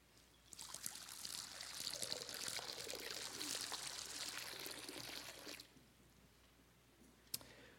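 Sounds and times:
water pouring into a baptismal font during a baptism: 0.6s - 5.7s
small click: 7.3s - 7.5s.

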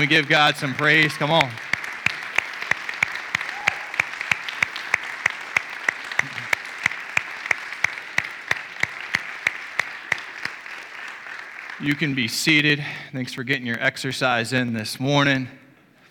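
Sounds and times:
speech: 0.0s - 1.7s, 11.8s - 15.6s
continuous wash of scattered applause: 0.0s - 12.8s
large crowd clapping in a steady rhythmic beat: 0.0s - 12.8s.

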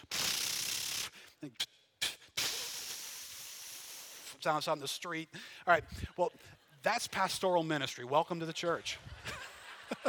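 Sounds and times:
voice imitating a ratcheting garden sprinkler: 0.0s - 4.6s
speech: 4.4s - 9.4s
laughter: 8.3s - 10.0s.

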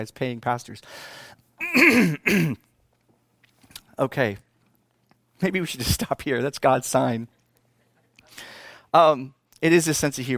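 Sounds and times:
speech: 0.0s - 2.7s, 4.0s - 4.4s, 5.4s - 7.4s, 8.3s - 10.3s
person clearing throat with a cough-like edge: 1.6s - 2.7s.

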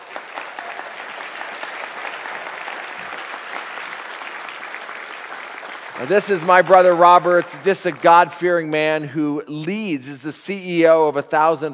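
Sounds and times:
audience applause from a sizable crowd in a room: 0.0s - 8.4s
speech: 6.0s - 11.7s.

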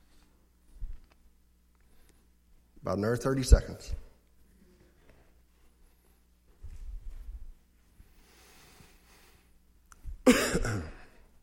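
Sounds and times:
speech: 2.8s - 4.0s
low rumbling throat clearing: 10.3s - 11.2s
sharp loud cough: 10.3s - 11.2s.

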